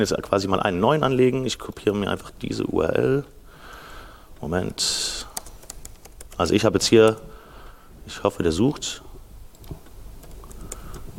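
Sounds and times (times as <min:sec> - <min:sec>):
speech: 0:00.0 - 0:03.4, 0:04.4 - 0:05.3, 0:06.4 - 0:07.3, 0:08.1 - 0:09.0
low hum: 0:00.0 - 0:11.1
typing on a computer keyboard: 0:05.3 - 0:07.2, 0:09.5 - 0:11.1.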